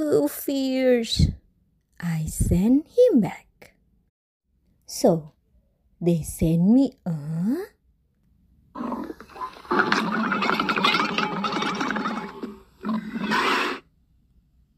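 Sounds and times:
speech: 0.0 - 1.4, 2.0 - 3.7, 4.9 - 5.4, 6.0 - 7.8, 9.7 - 10.7
camel grumbling: 8.8 - 13.8.

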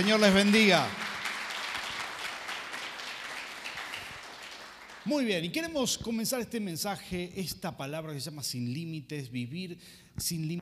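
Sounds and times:
speech: 0.0 - 1.0, 5.0 - 10.6
audience applause: 0.0 - 5.5.

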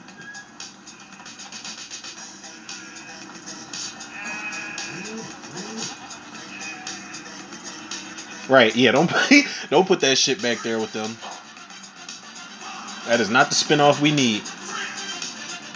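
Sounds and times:
goat bleating: 4.1 - 7.4
speech: 8.5 - 11.3, 13.1 - 14.5
laughter: 8.9 - 9.9.

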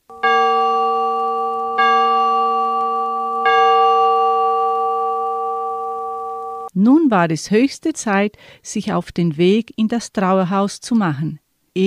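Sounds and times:
church bell tolling: 0.0 - 6.7
speech: 6.8 - 11.8.

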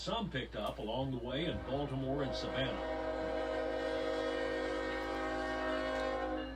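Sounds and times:
speech: 0.0 - 3.1
intermodal freight train horn multi-tone chord: 1.4 - 6.5.

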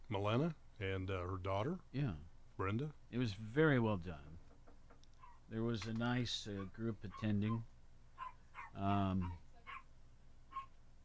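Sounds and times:
speech: 0.1 - 4.4, 5.5 - 7.7, 8.7 - 9.4
dog barking loudly: 5.2 - 5.4, 6.6 - 7.6, 8.2 - 9.9, 10.5 - 10.7.

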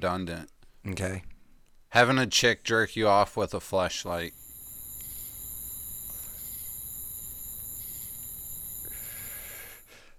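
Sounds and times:
speech: 0.0 - 1.3, 1.9 - 4.4
crickets chirping: 4.1 - 10.0.

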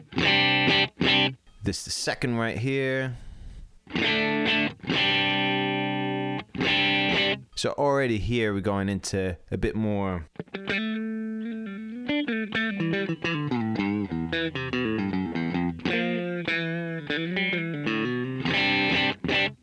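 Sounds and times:
slightly overdriven electric guitar through amp profile: 0.0 - 1.4, 3.8 - 7.5, 10.3 - 19.6
speech: 1.7 - 3.3, 3.9 - 4.7, 7.6 - 10.9.

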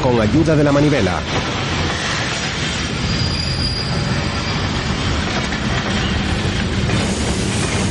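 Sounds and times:
speech: 0.0 - 1.6
rumble of rolling train wheels: 0.0 - 7.9
train braking and slowing to a stop: 0.8 - 7.9
metallic squeal of train brakes: 2.8 - 5.2.

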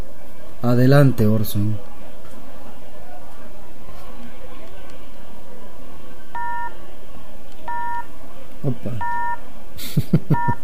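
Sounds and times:
constant dense noisy background: 0.0 - 10.6
speech: 0.6 - 1.9, 8.7 - 9.2, 9.8 - 10.6
telephone dialing tones: 7.7 - 8.0, 9.0 - 9.4
laughter: 9.8 - 10.6.

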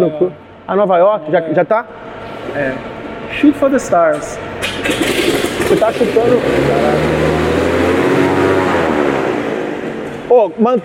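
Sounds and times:
speech: 0.0 - 5.1, 5.7 - 7.3, 10.3 - 10.8
airplane engine roar: 1.9 - 10.3.

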